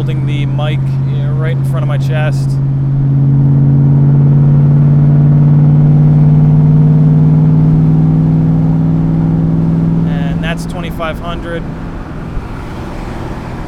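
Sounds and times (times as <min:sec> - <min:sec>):
speech: 0:00.0 - 0:02.7, 0:11.0 - 0:11.9
car engine humming at 60 miles an hour in fifth gear at 2,000 RPM: 0:00.0 - 0:13.6
road noise heard from inside a moving car: 0:00.0 - 0:13.6
wind rushing in through both open car windows: 0:08.7 - 0:13.6.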